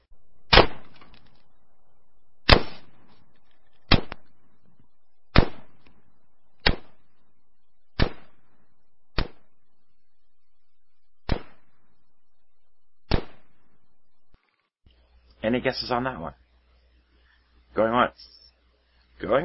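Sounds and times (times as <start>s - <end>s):
Colt LE6920 semi-automatic rifle gunshots: 0.5s - 1.0s, 2.5s - 3.0s, 3.9s - 4.2s, 5.3s - 5.8s, 8.0s - 8.4s
speech: 15.5s - 16.4s, 17.8s - 18.4s, 19.2s - 19.4s.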